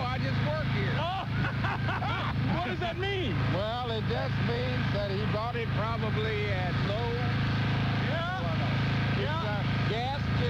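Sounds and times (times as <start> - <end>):
gas generator engine droning: 0.0 - 10.4
laughter: 1.0 - 2.8
speech: 2.9 - 7.3.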